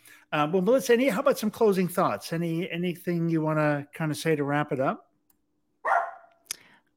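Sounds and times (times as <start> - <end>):
speech: 0.3 - 5.1
dog barking: 5.8 - 6.4.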